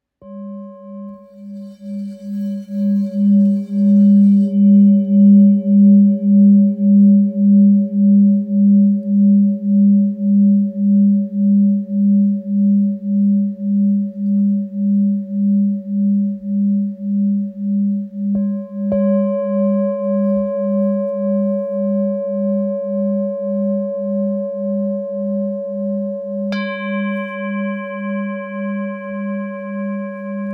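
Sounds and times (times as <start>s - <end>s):
antique bowl ringing in G sharp: 0.2s - 30.5s.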